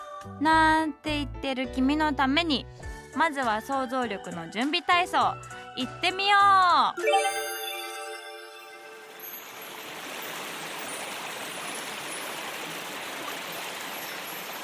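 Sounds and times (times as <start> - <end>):
speech: 0.2 - 7.4
brief tonal sound: 7.0 - 9.6
flowing river water: 7.0 - 14.6.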